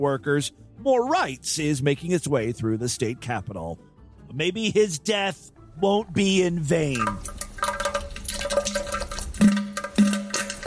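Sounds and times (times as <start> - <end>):
speech: 0.0 - 7.4
toilet flushing: 6.9 - 10.6.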